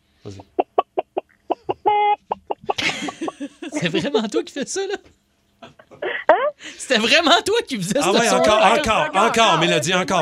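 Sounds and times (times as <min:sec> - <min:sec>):
speech: 0:00.2 - 0:00.6, 0:03.8 - 0:05.2, 0:06.9 - 0:10.1
person imitating a hen clucking: 0:00.3 - 0:02.8, 0:06.0 - 0:06.6
laughter: 0:02.6 - 0:05.0.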